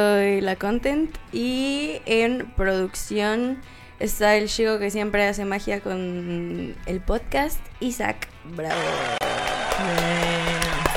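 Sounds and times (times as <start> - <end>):
speech: 0.0 - 9.2, 9.8 - 10.6
applause: 8.7 - 10.9.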